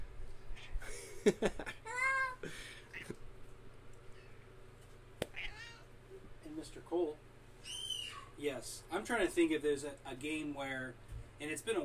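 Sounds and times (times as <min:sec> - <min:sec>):
faint low hum: 0:00.0 - 0:11.8
speech: 0:01.2 - 0:01.7, 0:09.0 - 0:11.8
cat meowing: 0:04.0 - 0:04.4, 0:05.2 - 0:05.9.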